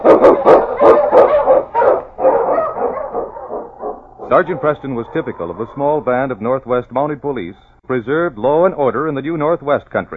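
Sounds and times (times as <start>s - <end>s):
husky sled dogs barking and howling: 0.0s - 6.3s
speech: 4.4s - 10.1s.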